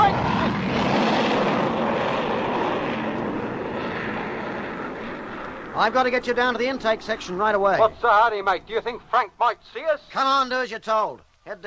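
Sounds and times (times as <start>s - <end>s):
fighter plane engine roar as the aircraft flies overhead: 0.0s - 9.1s
speech: 5.8s - 11.6s.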